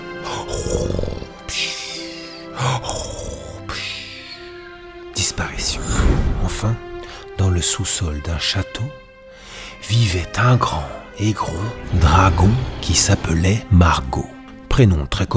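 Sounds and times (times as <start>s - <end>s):
voice imitating trolls snoring and grunting: 0.2s - 1.4s, 2.6s - 3.8s
speech: 6.6s - 6.9s, 7.6s - 9.0s, 9.9s - 15.3s.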